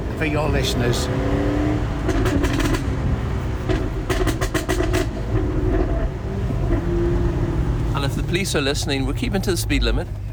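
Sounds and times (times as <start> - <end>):
Jaguar car engine revving in first gear at about 20 miles an hour in Lerwick: 0.0 - 10.3
speech: 0.2 - 2.6, 8.3 - 10.3.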